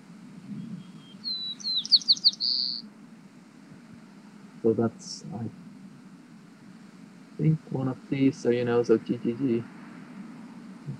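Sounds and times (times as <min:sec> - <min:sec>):
steady low hum: 0:00.0 - 0:10.9
local male bird singing: 0:00.5 - 0:02.9
speech: 0:04.6 - 0:05.6, 0:07.4 - 0:09.8.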